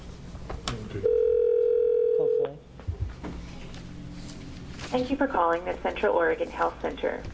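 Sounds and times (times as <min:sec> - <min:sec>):
brief warbling phone tones: 0:01.0 - 0:02.6
telephone dial tone: 0:01.1 - 0:02.4
speech: 0:04.9 - 0:07.3.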